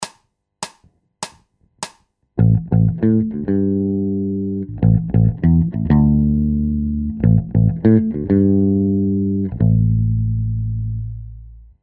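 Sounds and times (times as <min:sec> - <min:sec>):
bass loops: 0:02.4 - 0:11.7.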